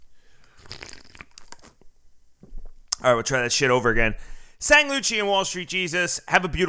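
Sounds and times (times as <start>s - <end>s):
sipping coffee with wet slurping: 0.4s - 1.9s
speech: 3.0s - 6.6s.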